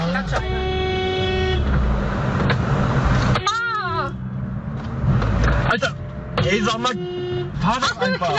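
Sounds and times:
car horns honking in busy traffic: 0.0s - 2.1s, 3.2s - 4.4s, 5.7s - 8.3s
rumble of traffic engines: 0.0s - 8.3s.

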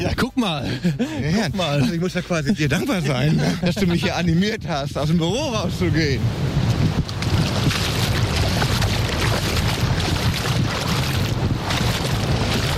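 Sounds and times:
laughter: 0.0s - 4.4s
speech: 0.0s - 6.6s
wind at a sandy island beach: 0.0s - 12.7s
waves at a sandy island beach: 5.2s - 12.7s.

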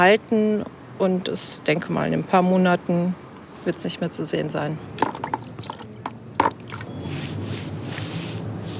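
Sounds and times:
speech: 0.0s - 5.1s
containers clicking and tapping: 5.0s - 6.9s.

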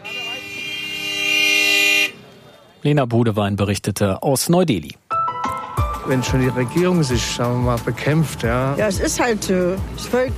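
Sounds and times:
car horns honking in busy street traffic in New Delhi India: 0.0s - 2.8s
speech: 2.8s - 5.0s, 6.0s - 10.3s.

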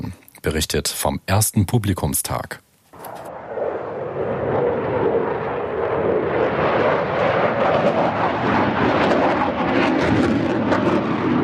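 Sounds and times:
speech: 0.4s - 2.6s
fighter jets roaring over an air show: 3.0s - 11.4s.

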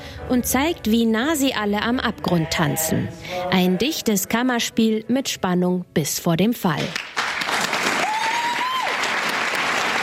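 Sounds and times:
speech: 0.3s - 7.2s
theatre audience applause at premiere: 7.0s - 10.0s.

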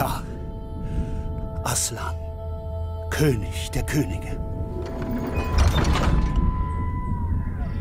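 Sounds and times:
lingering dull hum: 0.0s - 7.8s
speech: 1.8s - 2.2s, 3.2s - 6.2s
heavy door creaking and swinging shut with a low rumbling thud: 4.7s - 7.2s.

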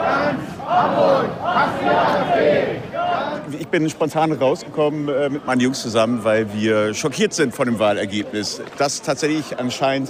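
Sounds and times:
crowd of protesters shouting and chanting at a demonstration: 0.0s - 7.1s
speech: 3.6s - 10.0s.

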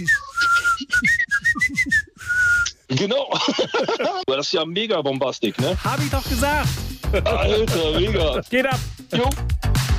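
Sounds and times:
speech: 0.0s - 0.2s, 3.0s - 9.6s
whistled melody from a dance song: 0.0s - 2.8s
laughter: 3.0s - 4.3s, 7.1s - 7.7s.

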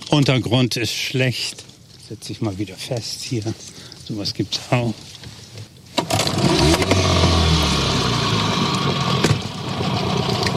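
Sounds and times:
speech: 0.1s - 5.3s
boat motor running as the boat reverses to free a snagged eel trap: 6.0s - 10.5s.

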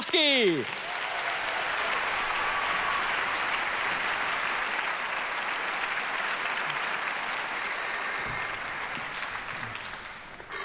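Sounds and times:
large audience applauding arriving orchestra conductor: 0.0s - 10.6s
speech: 0.1s - 0.9s
faint bell-like ringing tone: 7.6s - 8.8s.

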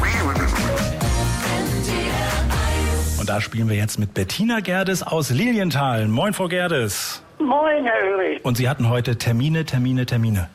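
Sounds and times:
duck quacking in radio game-show jingle: 0.0s - 1.0s
upbeat radio game-show jingle music: 0.6s - 3.5s
speech: 3.3s - 10.5s.

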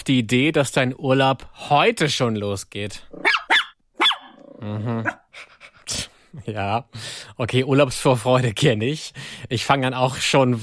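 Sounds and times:
speech: 0.0s - 3.4s, 4.6s - 10.6s
dog barking sharply: 3.2s - 4.4s
dog low rumbling growl: 4.3s - 5.2s.

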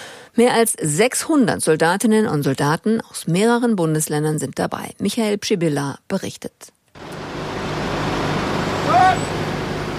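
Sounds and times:
speech: 0.4s - 6.8s
convoy of heavy military trucks rumbling past: 7.0s - 9.9s.

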